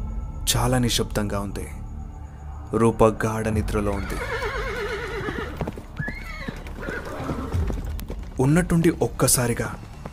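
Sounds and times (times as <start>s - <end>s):
speech: 0.5s - 1.8s, 2.7s - 4.4s, 8.4s - 9.9s
wavering cries: 3.9s - 7.7s
horses whinnying: 3.9s - 8.0s
horses galloping in a desert at night: 4.0s - 10.1s
rapid irregular hoof thuds: 5.3s - 9.1s.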